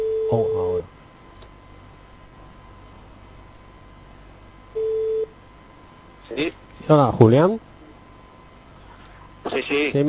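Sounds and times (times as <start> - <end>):
steady mid-pitched telephone connecting tone: 0.0 - 0.8, 4.8 - 5.3
speech: 0.3 - 0.9, 6.4 - 7.7, 9.5 - 10.0.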